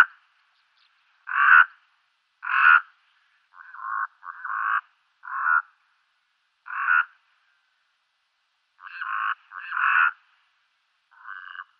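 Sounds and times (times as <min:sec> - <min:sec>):
brown-necked raven croaking: 0:01.3 - 0:01.8, 0:02.4 - 0:02.9, 0:03.5 - 0:05.7, 0:06.6 - 0:07.2, 0:08.8 - 0:10.2, 0:11.1 - 0:11.7.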